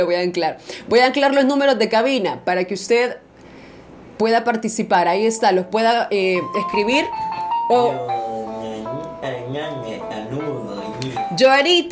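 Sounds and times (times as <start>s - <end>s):
speech: 0.0s - 3.3s, 4.2s - 8.2s, 11.4s - 11.8s
incoming phone call ringing with chime-like melodic tones: 6.4s - 10.6s, 11.2s - 11.8s.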